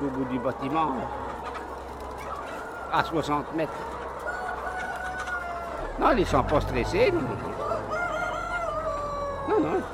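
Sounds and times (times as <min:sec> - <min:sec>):
hens clucking and calling in a crowded poultry house: 0:00.0 - 0:09.9
speech: 0:00.2 - 0:01.2, 0:02.9 - 0:04.0, 0:06.0 - 0:08.0, 0:09.5 - 0:09.9
drawn-out crow-like notes from hens: 0:04.5 - 0:09.6.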